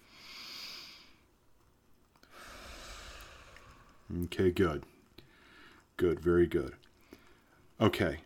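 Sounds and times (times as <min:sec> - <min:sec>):
slow deep breathing with soft hissing rush: 0:00.0 - 0:01.3, 0:02.2 - 0:04.4, 0:05.0 - 0:05.9
speech: 0:04.1 - 0:04.9, 0:06.0 - 0:06.9, 0:07.8 - 0:08.2.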